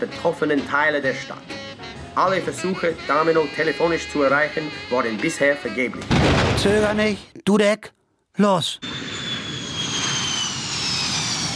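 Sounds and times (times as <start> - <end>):
speech: 0.0 - 1.6, 2.2 - 9.1
airplane flying overhead: 8.8 - 11.5.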